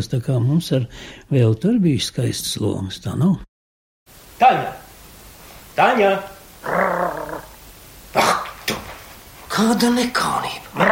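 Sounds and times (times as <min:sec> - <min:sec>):
speech: 0:00.0 - 0:03.5, 0:04.4 - 0:04.8, 0:05.8 - 0:07.4, 0:09.6 - 0:10.9
dog growling snarl: 0:06.6 - 0:08.6, 0:10.6 - 0:10.9.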